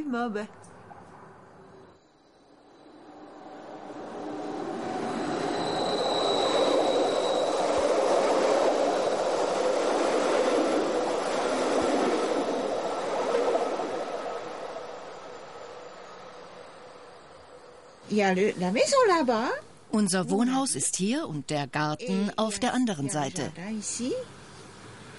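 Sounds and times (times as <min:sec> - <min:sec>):
speech: 0:00.0 - 0:00.7, 0:18.2 - 0:24.4
train rumbling past on the track beside a house: 0:00.0 - 0:25.1
thin metallic train wheel squeal: 0:01.7 - 0:09.3.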